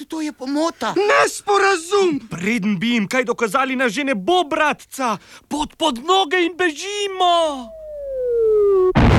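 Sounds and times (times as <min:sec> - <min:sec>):
speech: 0:00.1 - 0:07.8
falling whistle: 0:07.6 - 0:09.0.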